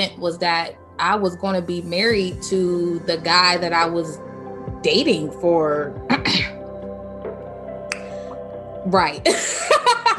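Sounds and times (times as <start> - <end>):
speech: 0.0 - 6.5, 8.8 - 10.1
woman clearing her throat: 6.1 - 6.6.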